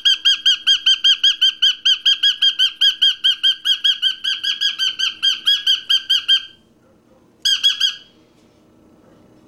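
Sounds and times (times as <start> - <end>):
parrot squawking: 0.0 - 6.7, 7.4 - 8.2.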